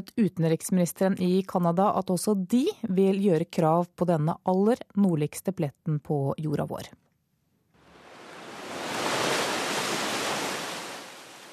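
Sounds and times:
speech: 0.0s - 7.0s
ship breaking through sea ice: 7.9s - 11.5s.

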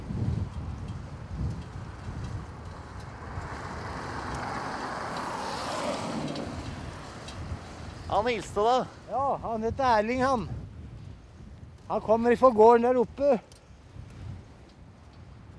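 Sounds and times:
steady wind noise: 0.0s - 15.5s
car approaching on an outdoor road: 1.6s - 8.3s
speech: 8.1s - 10.6s, 11.9s - 13.5s.

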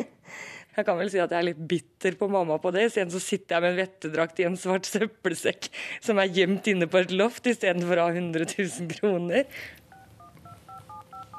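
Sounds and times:
faint hiss: 0.0s - 11.3s
speech: 0.8s - 9.8s
telephone keypad DTMF tones beeping: 9.9s - 11.3s.

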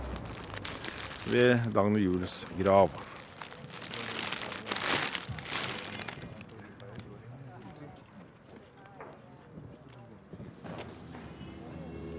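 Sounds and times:
plastic wrapping of a bouquet of flowers crinkling at a grave: 0.0s - 7.0s
crunchy handling noises: 0.0s - 7.2s
speech: 1.3s - 3.1s.

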